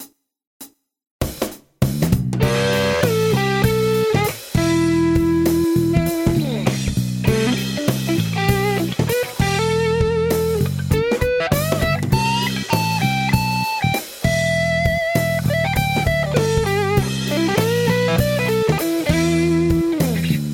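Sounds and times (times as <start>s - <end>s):
intro solo: 2.4s - 20.5s.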